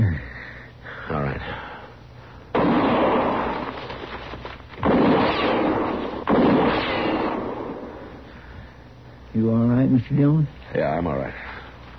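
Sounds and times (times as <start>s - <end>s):
gunshots fired into brush: 2.6s - 8.0s
speech: 9.5s - 11.5s.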